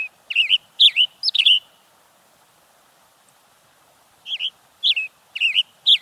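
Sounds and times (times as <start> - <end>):
western tanager chirping: 0.3 - 1.8, 4.2 - 6.0.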